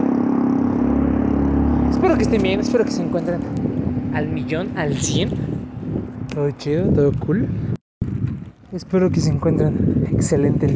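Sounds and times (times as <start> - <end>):
loud motorcycle exhaust roaring: 0.0 - 6.3
speech: 2.0 - 5.5, 6.4 - 7.7, 8.7 - 10.7.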